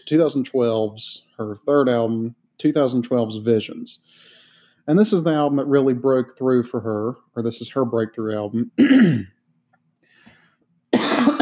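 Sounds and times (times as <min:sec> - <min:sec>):
speech: 0:00.0 - 0:09.4
person sitting on a couch coughing: 0:08.8 - 0:09.4, 0:10.9 - 0:11.3.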